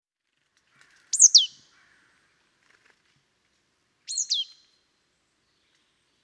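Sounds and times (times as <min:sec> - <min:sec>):
Poecile palustris marsh tit calls: 0:00.8 - 0:02.1, 0:04.1 - 0:04.7.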